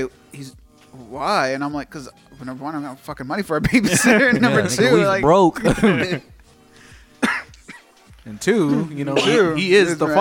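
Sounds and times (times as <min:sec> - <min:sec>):
speech: 0:00.0 - 0:06.3, 0:08.2 - 0:10.1
laughter: 0:03.6 - 0:06.3
person coughing: 0:05.6 - 0:06.2, 0:07.2 - 0:07.9, 0:09.1 - 0:09.6.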